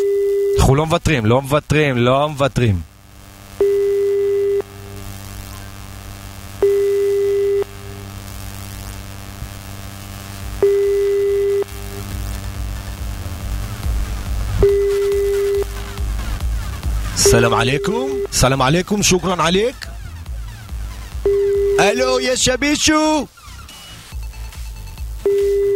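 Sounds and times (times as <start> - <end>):
telephone line tone while redialing a call: 0.0 - 0.7, 3.6 - 5.6, 6.5 - 8.1, 10.5 - 12.1, 14.6 - 15.7, 17.2 - 18.4, 21.2 - 22.1, 25.2 - 25.7
speech: 0.7 - 2.9, 17.4 - 19.8, 21.8 - 23.4
low constant hum: 1.4 - 21.8.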